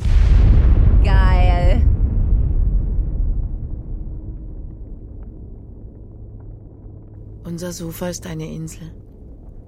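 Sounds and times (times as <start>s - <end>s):
airplane exploding high in the sky with a deep heavy boom: 0.0s - 7.5s
speech: 7.6s - 9.1s.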